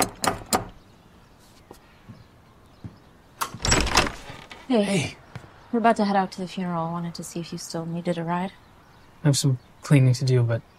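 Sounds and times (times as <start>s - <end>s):
front door opening: 3.4s - 5.1s
speech: 4.7s - 8.6s, 9.2s - 10.7s.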